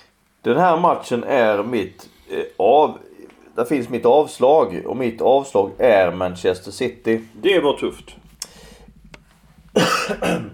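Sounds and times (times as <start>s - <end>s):
speech: 0.4s - 8.2s, 9.8s - 10.5s
faint throat sounds: 9.7s - 10.5s
person coughing: 9.8s - 10.5s.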